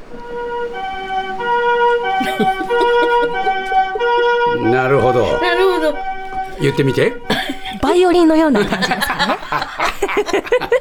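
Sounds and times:
softer-toned two-tone ambulance siren in comfort mode: 0:00.0 - 0:10.7
laughter: 0:02.0 - 0:10.7
speech: 0:02.4 - 0:02.6, 0:04.8 - 0:10.7.

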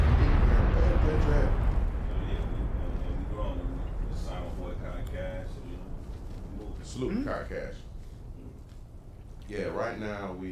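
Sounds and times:
bomb explosion sound effect: 0:00.0 - 0:09.4
speech: 0:09.5 - 0:10.5.

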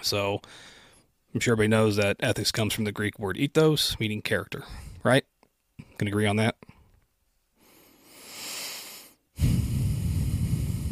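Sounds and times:
speech: 0:00.0 - 0:05.3, 0:06.0 - 0:06.7
heavy breathing straight into a microphone: 0:00.4 - 0:01.2, 0:07.6 - 0:10.9.

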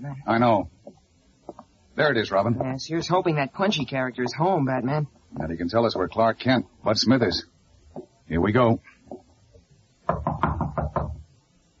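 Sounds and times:
speech: 0:00.0 - 0:00.8, 0:02.0 - 0:09.0
firm knocking on a door: 0:10.0 - 0:11.3.

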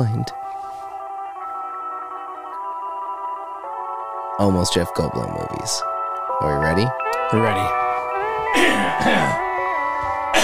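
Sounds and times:
speech: 0:00.0 - 0:00.4, 0:04.4 - 0:07.8, 0:08.5 - 0:09.4
steady tonal background: 0:00.0 - 0:10.4
throat clearing: 0:08.6 - 0:09.4.

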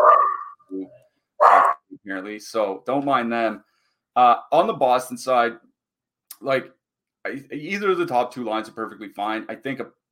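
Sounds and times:
dog barking: 0:00.0 - 0:00.5, 0:01.4 - 0:01.8
speech: 0:02.2 - 0:05.6, 0:06.4 - 0:10.1.

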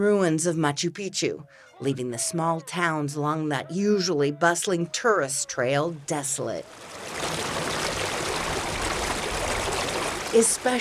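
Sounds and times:
speech: 0:00.0 - 0:07.5, 0:10.3 - 0:10.7
water rushing through stone-lined irrigation canals: 0:06.6 - 0:10.7.

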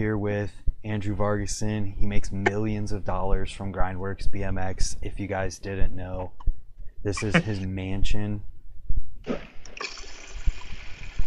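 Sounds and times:
speech: 0:00.0 - 0:06.4, 0:07.0 - 0:08.5, 0:09.2 - 0:10.0
dull low thumps: 0:00.0 - 0:09.3
water trickling and splashing from a fountain: 0:09.7 - 0:11.2.

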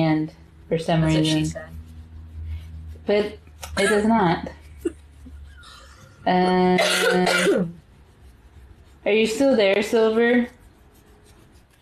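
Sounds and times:
speech: 0:00.1 - 0:01.8, 0:03.1 - 0:05.0, 0:06.2 - 0:07.8, 0:09.0 - 0:10.6
person coughing: 0:03.8 - 0:04.1, 0:06.8 - 0:07.7.

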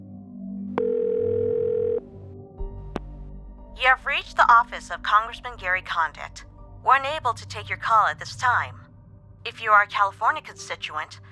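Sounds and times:
telephone ringing tone: 0:00.8 - 0:02.1
speech: 0:03.8 - 0:08.8, 0:09.4 - 0:11.2.

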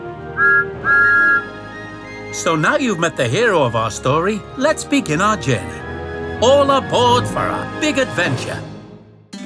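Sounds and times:
small steam engine whistle: 0:00.4 - 0:02.4
speech: 0:02.4 - 0:05.8, 0:06.4 - 0:08.7.

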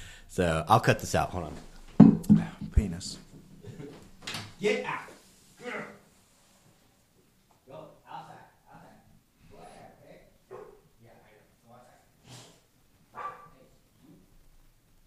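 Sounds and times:
speech: 0:00.4 - 0:01.7, 0:02.8 - 0:03.3, 0:04.6 - 0:05.1
dog barking: 0:10.5 - 0:10.9, 0:13.1 - 0:13.6.

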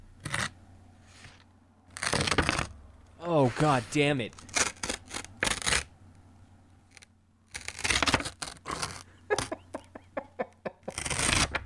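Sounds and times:
paper being torn slowly: 0:01.2 - 0:02.7, 0:03.6 - 0:05.9, 0:06.9 - 0:09.1, 0:10.9 - 0:11.6
speech: 0:03.2 - 0:04.4.

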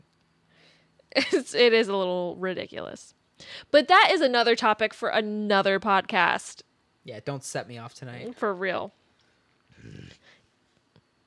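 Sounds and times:
speech: 0:01.2 - 0:09.0
person growling like a dog: 0:09.7 - 0:10.2.

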